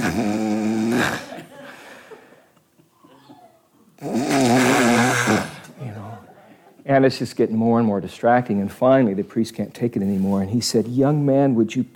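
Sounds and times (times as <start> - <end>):
person imitating a man's loud snoring: 0.0 - 1.3, 4.0 - 5.7
speech: 6.9 - 11.9.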